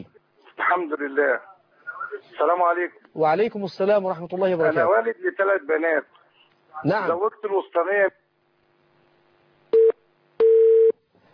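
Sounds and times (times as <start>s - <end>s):
speech: 0.7s - 1.5s, 2.1s - 6.1s, 6.7s - 8.2s
telephone busy tone after a dropped call: 9.8s - 11.0s.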